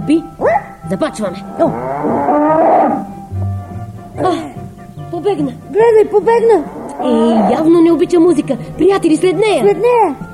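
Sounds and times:
speech: 0.1s - 3.1s, 4.2s - 4.5s, 5.2s - 10.3s
spotted red-and-white cow with a black muzzle mooing while grazing: 1.5s - 4.0s, 6.6s - 7.9s.

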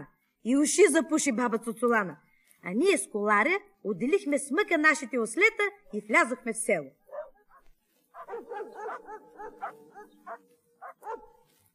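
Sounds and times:
speech: 0.4s - 7.0s
dogs barking: 7.0s - 11.5s.

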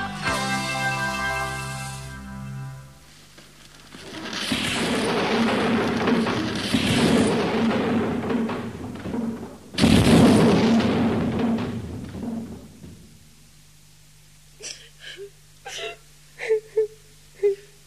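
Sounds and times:
low steady hum: 0.0s - 17.8s
person wailing and sobbing: 14.6s - 17.8s.

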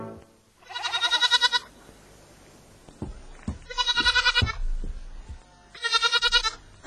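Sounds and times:
goats bleating: 0.6s - 1.7s, 3.6s - 4.6s, 5.7s - 6.6s.

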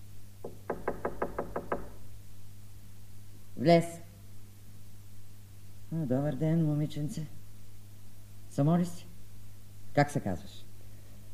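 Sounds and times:
low steady hum: 0.0s - 11.3s
firm knocks on a door: 0.4s - 2.0s
speech: 3.6s - 4.0s, 6.0s - 7.4s, 8.6s - 9.1s, 10.0s - 10.7s.

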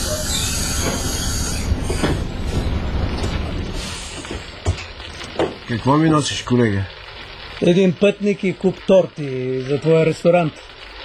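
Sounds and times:
large Greyhound bus engine rumbling and droning: 0.0s - 4.6s
bus brakes squealing: 0.0s - 11.0s
speech: 5.7s - 7.0s, 7.6s - 10.8s.

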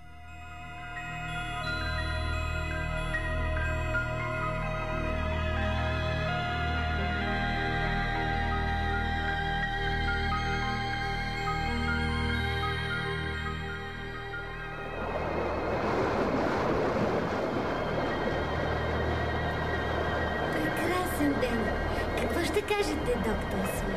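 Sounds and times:
calm sea waves washing around a ship: 0.0s - 23.9s.

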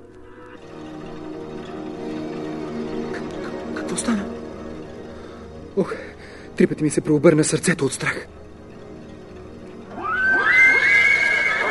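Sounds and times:
speech: 3.9s - 4.4s, 5.8s - 8.4s
horse neighing: 10.0s - 11.6s.

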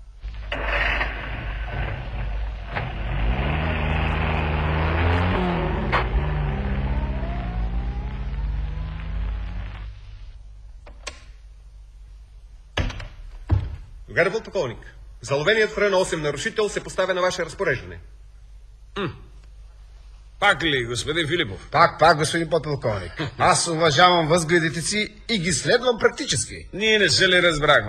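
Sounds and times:
car engine rumbling and revving through gear changes while driving off: 0.3s - 10.4s
sharp mechanical clunks: 12.8s - 14.0s
speech: 14.2s - 18.2s, 19.0s - 19.3s, 20.4s - 27.8s.

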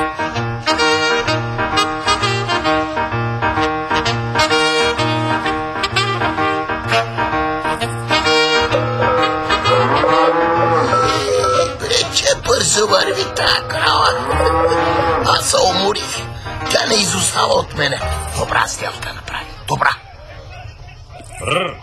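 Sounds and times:
steady dense background: 0.0s - 21.8s
cow mooing loudly while driven to a fair: 8.1s - 11.8s, 12.8s - 15.8s
speech: 17.4s - 19.5s.

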